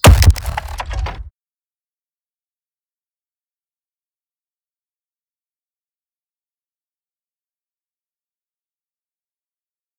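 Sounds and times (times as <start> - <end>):
sub bass thud: 0.0 - 1.3.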